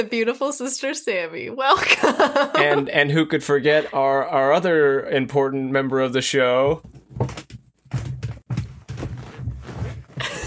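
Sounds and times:
speech: 0:00.0 - 0:07.4
laughter: 0:01.7 - 0:04.6, 0:10.2 - 0:10.4
creaky chair groaning and knocking: 0:06.6 - 0:10.4.

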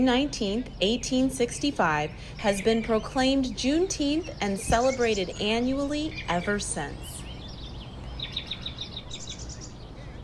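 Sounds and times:
speech: 0:00.0 - 0:07.2
low outdoor hum: 0:00.0 - 0:10.2
bird chirping: 0:01.9 - 0:10.2.

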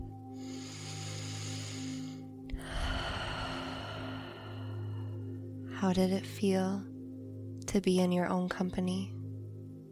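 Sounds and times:
slow deep breathing during a guided relaxation: 0:00.1 - 0:05.5
speech: 0:05.8 - 0:06.9, 0:07.7 - 0:09.2.

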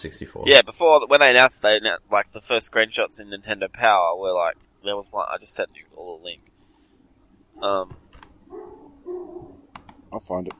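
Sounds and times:
speech: 0:00.0 - 0:06.5, 0:07.6 - 0:09.5, 0:10.1 - 0:10.5
dog barking: 0:08.5 - 0:09.6.

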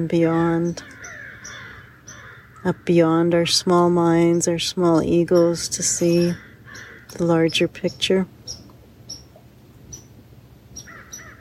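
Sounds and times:
speech: 0:00.0 - 0:01.0, 0:02.6 - 0:06.5, 0:07.1 - 0:08.4
low outdoor rumble: 0:00.0 - 0:11.3
crows cawing: 0:00.8 - 0:03.0, 0:06.3 - 0:07.2, 0:10.8 - 0:11.3.

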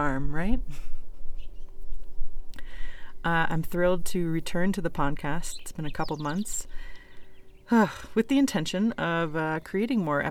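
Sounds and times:
speech: 0:00.0 - 0:01.0, 0:03.2 - 0:06.9, 0:07.7 - 0:10.2
birds singing outdoors in the morning: 0:00.0 - 0:10.2
steady low outdoor rumble: 0:00.0 - 0:10.2.

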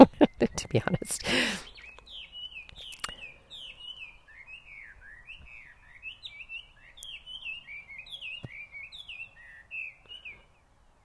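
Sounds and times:
speech: 0:00.0 - 0:01.7
hiss: 0:01.0 - 0:11.0
bird calls in a Hawaiian rainforest: 0:01.6 - 0:10.4
sharp clicks: 0:02.7 - 0:03.2.

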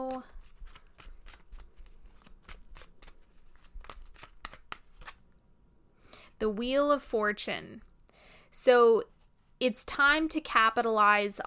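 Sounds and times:
tarot cards being shuffled: 0:00.0 - 0:05.3
speech: 0:06.4 - 0:07.9, 0:08.6 - 0:11.4.

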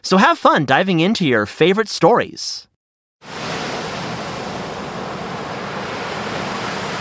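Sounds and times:
speech: 0:00.0 - 0:03.4
ocean surf breaking on shore: 0:03.2 - 0:06.9.

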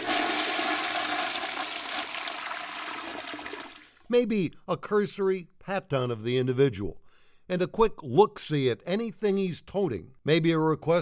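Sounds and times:
toilet flushing: 0:00.0 - 0:04.1
speech: 0:04.1 - 0:10.9.

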